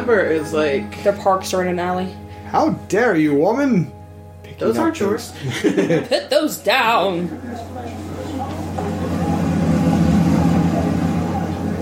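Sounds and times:
speech: 0.0 - 8.1
laughter: 5.2 - 6.5
car engine idling on a street: 7.3 - 11.7.

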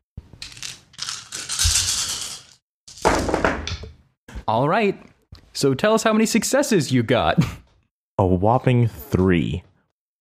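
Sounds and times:
handful of dice rolled for a battle roll in a game: 0.4 - 3.3
speech: 4.5 - 7.6, 8.2 - 9.7.

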